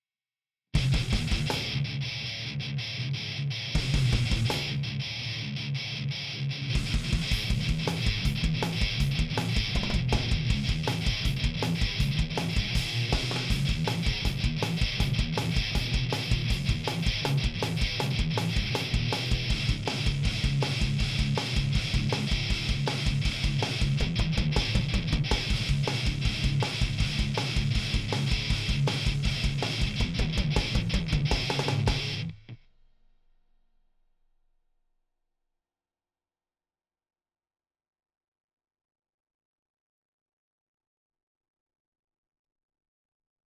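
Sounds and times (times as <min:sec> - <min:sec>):
filtered drums: 0:00.8 - 0:02.8, 0:03.5 - 0:05.9, 0:06.6 - 0:32.5.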